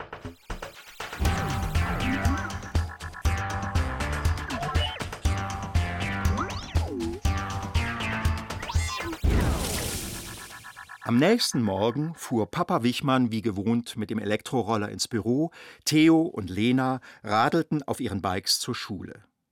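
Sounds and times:
bouncy cartoon-style music with sliding wobbling tones: 1.2s - 12.4s
speech: 11.1s - 19.3s.

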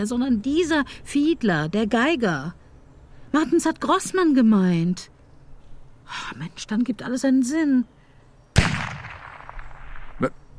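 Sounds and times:
speech: 0.0s - 2.6s, 3.3s - 5.1s, 6.1s - 8.0s, 10.2s - 10.4s
loud gunshot: 8.6s - 10.3s.

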